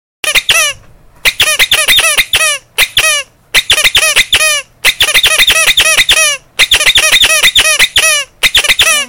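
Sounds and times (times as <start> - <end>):
stuffed toy squeaker: 0.2 - 9.0.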